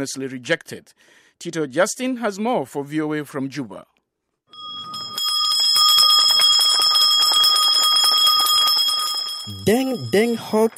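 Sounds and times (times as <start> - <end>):
speech: 0.0 - 3.9, 9.5 - 10.7
handbell rung to mark exams starting: 4.6 - 10.7.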